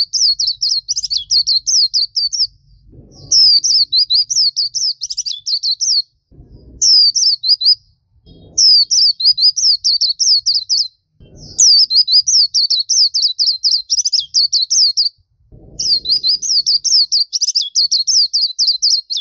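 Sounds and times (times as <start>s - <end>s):
low thumps: 0.0s - 4.5s, 6.2s - 10.5s, 11.2s - 12.0s, 15.2s - 17.0s
common nightingale song: 0.0s - 6.2s, 6.8s - 19.1s.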